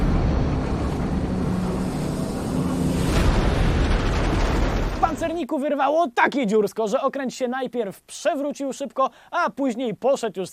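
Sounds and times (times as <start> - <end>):
naval mine explosion in a harbor: 0.0 - 5.4
speech: 5.5 - 10.5.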